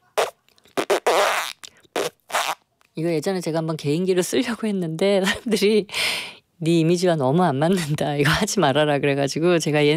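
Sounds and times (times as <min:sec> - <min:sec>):
voice imitating a fart: 0:00.2 - 0:02.6
speech: 0:03.0 - 0:09.9.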